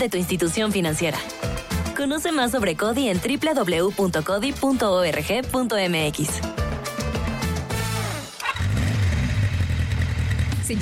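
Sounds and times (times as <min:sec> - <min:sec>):
speech: 0:00.0 - 0:06.6
motorcycle engine revving: 0:07.2 - 0:10.8.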